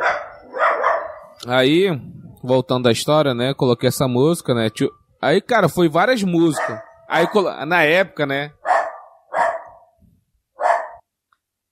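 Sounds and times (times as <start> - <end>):
dog barking: 0.0 - 1.4, 6.4 - 7.5, 8.6 - 10.0, 10.6 - 11.0
speech: 1.4 - 8.6.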